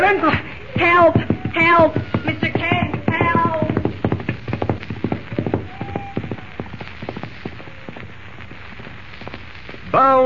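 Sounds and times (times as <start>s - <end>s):
speech: 0.1s - 2.6s
horse galloping hooves at full gallop: 0.7s - 9.5s.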